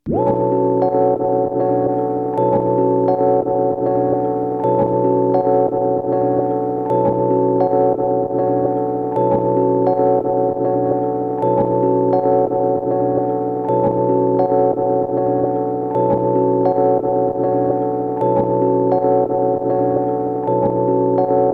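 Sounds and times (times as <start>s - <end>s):
tape loop melody: 0.1s - 21.5s.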